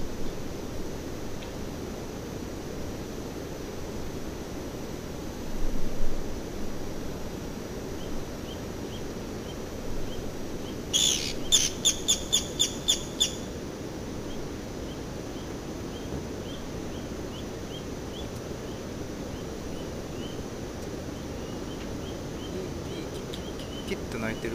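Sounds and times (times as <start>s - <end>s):
constant background hiss: 0.0s - 24.5s
Japanese pygmy woodpecker giving squeaky, rasping calls: 10.6s - 13.4s, 21.2s - 24.5s.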